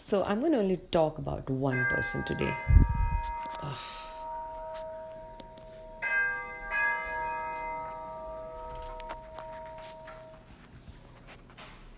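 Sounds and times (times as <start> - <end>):
speech: 0.1 - 2.9, 3.6 - 4.0
doorbell ringing two-note ding-dong: 1.8 - 10.5.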